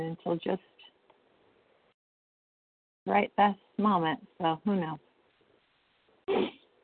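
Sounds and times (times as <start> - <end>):
speech: 0.0 - 0.9, 3.1 - 5.1
quiet room noise: 0.0 - 2.0, 3.1 - 6.8
sharp harsh cough: 6.3 - 6.6.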